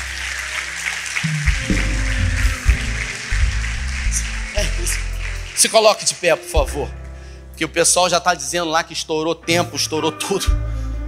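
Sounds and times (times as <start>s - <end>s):
congregation applauding: 0.0s - 6.9s
deep bass-heavy music tones: 1.2s - 9.8s, 10.4s - 11.0s
speech: 5.6s - 7.0s, 7.6s - 10.7s.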